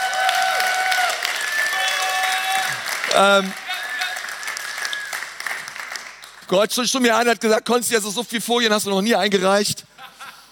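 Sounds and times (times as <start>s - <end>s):
audience applauding: 0.0s - 6.5s
speech: 3.1s - 3.6s, 6.5s - 9.7s.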